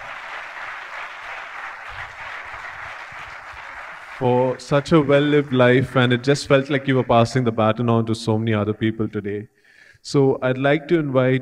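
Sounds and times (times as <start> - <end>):
audience applause: 0.0 - 6.6
speech: 4.2 - 11.3.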